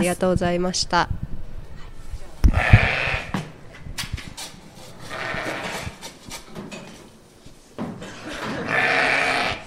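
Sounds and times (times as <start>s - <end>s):
speech: 0.0s - 1.2s
flock of Corriedale sheep bleating excitedly at feeding time: 2.5s - 3.3s, 5.1s - 5.9s, 8.6s - 9.6s.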